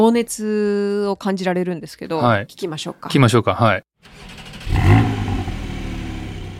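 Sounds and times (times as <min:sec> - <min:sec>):
speech: 0:00.0 - 0:05.0
Porsche 911 car engine revving and idling: 0:04.2 - 0:06.5.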